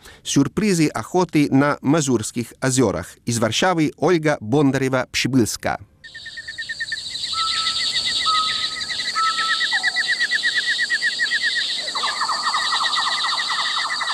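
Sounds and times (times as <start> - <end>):
speech: 0.2 - 6.4
birds chirping and trilling in a forest: 6.0 - 14.1.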